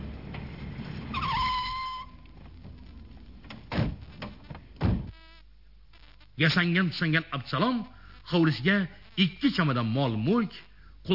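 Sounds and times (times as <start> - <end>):
car pulling up and stopping at a gate: 0.0 - 1.6
high whining squeal with ringing overtones: 1.0 - 2.2
dull thumps: 3.4 - 5.2
speech: 6.4 - 11.1.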